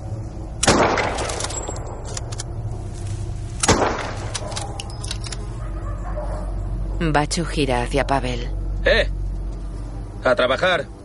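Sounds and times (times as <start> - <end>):
steady low outdoor rumble: 0.0 - 11.0
gunshots fired at dogs between houses: 0.6 - 1.8, 3.6 - 4.4
speech: 7.0 - 9.2, 10.2 - 11.0.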